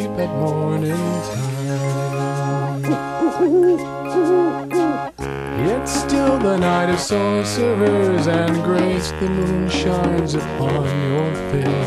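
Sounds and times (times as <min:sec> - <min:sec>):
speech: 0:00.2 - 0:02.2, 0:02.9 - 0:04.7, 0:05.7 - 0:11.8
owls hooting at twilight: 0:02.2 - 0:05.2.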